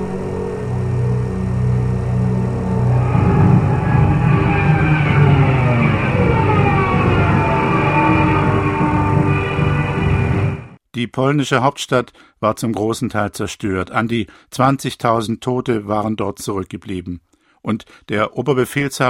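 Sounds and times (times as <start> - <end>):
Stuka dive bomber Jericho siren wailing during dive: 0.0 - 10.8
Stuka dive bomber engine roar: 0.0 - 10.8
speech: 11.0 - 19.0.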